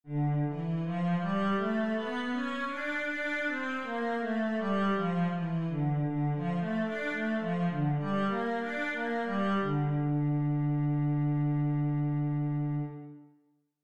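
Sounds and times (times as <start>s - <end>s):
cello playing a D minor scale: 0.1s - 13.3s.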